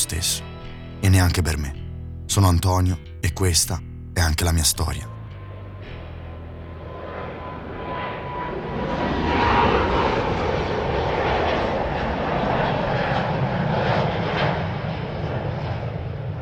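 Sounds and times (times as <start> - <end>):
speech: 0.0 - 5.1
loud airplane taking off and passing overhead: 6.4 - 16.4.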